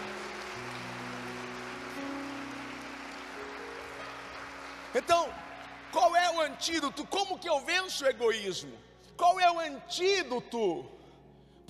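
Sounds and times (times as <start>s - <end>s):
crowd applauding: 0.0s - 7.8s
speech: 4.9s - 11.0s.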